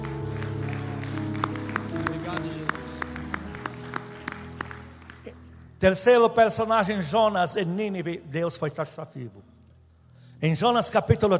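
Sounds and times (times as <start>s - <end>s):
congregation applauding: 0.0s - 5.8s
sustained keyboard chords: 0.0s - 8.3s
speech: 5.8s - 9.5s, 10.4s - 11.3s.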